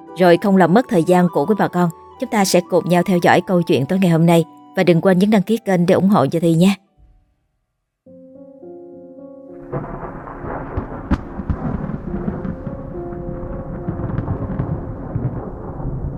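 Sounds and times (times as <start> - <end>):
tonal music: 0.0 - 7.4, 8.1 - 15.8
speech: 0.2 - 6.8
rolling thunder of a night storm: 9.6 - 16.1
steady rain of a night storm: 9.6 - 16.1.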